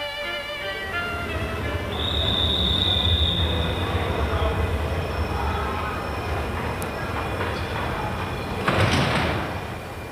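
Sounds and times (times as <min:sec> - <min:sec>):
train standing at a crowded railway station rumbling: 0:00.2 - 0:10.1.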